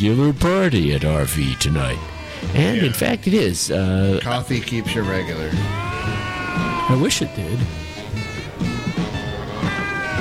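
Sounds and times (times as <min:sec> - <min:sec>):
speech: 0:00.0 - 0:07.9
steady musical backing: 0:00.0 - 0:10.1
drawn-out wavering cat meows in a recorded song: 0:00.5 - 0:10.1.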